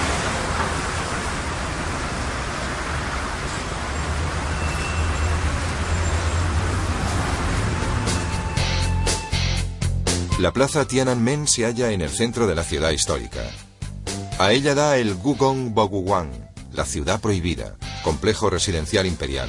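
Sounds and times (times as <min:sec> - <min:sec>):
cars and buses rumbling past: 0:00.0 - 0:10.0
city traffic roar in Beijing China: 0:00.0 - 0:10.2
speech: 0:10.4 - 0:13.7, 0:14.4 - 0:19.4.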